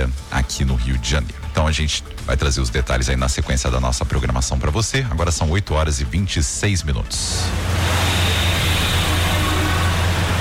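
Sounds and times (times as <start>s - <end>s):
speech: 0.0s - 8.2s
low hum: 7.2s - 10.3s
road traffic engine rumble and tire noise: 7.3s - 10.3s.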